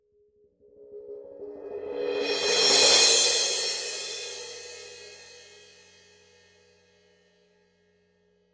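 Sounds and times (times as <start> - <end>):
Paiste PST5 18-inch medium crash cymbal roll: 1.8 - 6.1.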